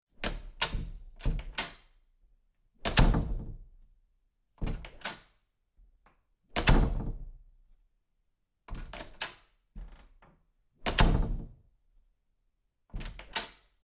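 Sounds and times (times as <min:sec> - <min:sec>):
door opening and closing: 0:00.2 - 0:01.9, 0:02.8 - 0:03.7, 0:04.6 - 0:05.3, 0:06.5 - 0:07.3, 0:08.7 - 0:11.6, 0:12.9 - 0:13.8.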